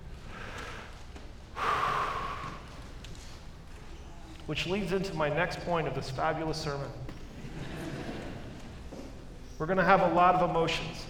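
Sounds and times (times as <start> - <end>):
congregation taking a collective deep breath during a sermon: 0.2 - 3.5
speech: 4.5 - 7.1, 9.6 - 11.0
laughter: 7.2 - 9.2.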